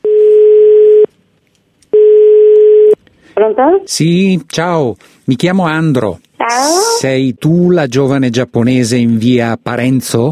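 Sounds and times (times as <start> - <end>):
telephone ringback tone: 0.0 - 1.1, 2.0 - 3.0
speech: 3.4 - 10.3.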